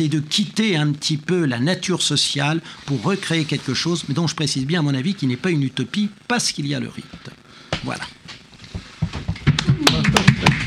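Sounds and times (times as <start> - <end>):
speech: 0.0 - 8.4
rapid wooden knocking on a table: 8.8 - 10.6.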